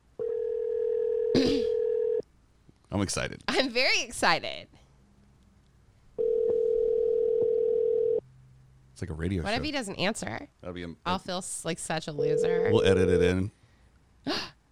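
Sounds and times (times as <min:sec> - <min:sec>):
phone's outgoing ringback tone for a call over Bluetooth: 0:00.2 - 0:02.2, 0:06.2 - 0:08.2, 0:12.2 - 0:13.4
speech: 0:02.9 - 0:04.8, 0:09.0 - 0:13.6, 0:14.2 - 0:14.5.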